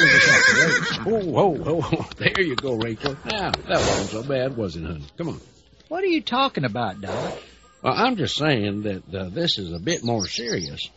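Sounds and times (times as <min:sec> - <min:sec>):
horse suffering from colic whinnying: 0:00.0 - 0:01.1
speech: 0:01.0 - 0:10.9
horse snorting cries: 0:03.6 - 0:04.3, 0:07.0 - 0:07.5.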